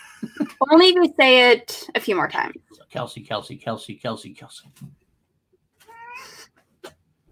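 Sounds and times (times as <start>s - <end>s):
speech: 0.2s - 5.0s
cat meowing: 5.8s - 6.5s.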